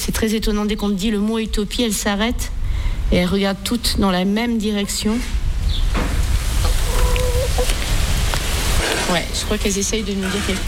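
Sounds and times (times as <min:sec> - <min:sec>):
speech: 0:00.0 - 0:06.1, 0:09.1 - 0:10.6
steady noisy outdoor background: 0:00.0 - 0:10.6
hens clucking softly: 0:06.6 - 0:09.3.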